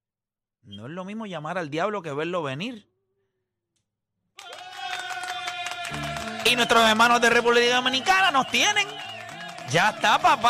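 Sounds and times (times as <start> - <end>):
speech: 0.7 - 2.9, 5.9 - 9.1, 9.7 - 10.4
applause: 4.4 - 10.4.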